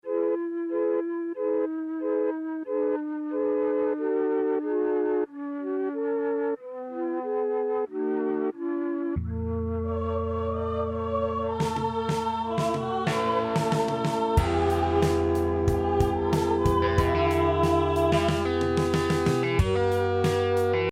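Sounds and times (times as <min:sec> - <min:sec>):
Arturia Mellotron flute: 0:00.0 - 0:20.4.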